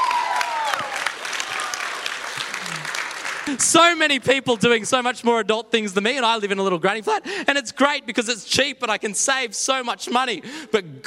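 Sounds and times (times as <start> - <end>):
faint whistles and cheers: 0.0 - 2.1
crowd applauding with dense clapping: 0.0 - 4.8
speech: 3.5 - 11.0.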